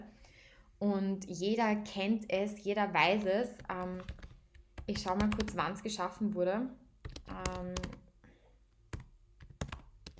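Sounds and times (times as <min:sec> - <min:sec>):
speech: 0:00.8 - 0:04.2, 0:04.9 - 0:08.0
typing on a computer keyboard: 0:03.6 - 0:05.7, 0:07.0 - 0:08.0, 0:08.9 - 0:10.1.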